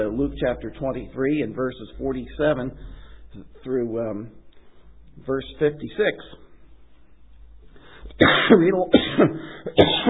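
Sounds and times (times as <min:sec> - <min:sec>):
speech: 0:00.0 - 0:04.4, 0:05.2 - 0:06.4, 0:08.1 - 0:10.0
man coughing: 0:08.2 - 0:10.0.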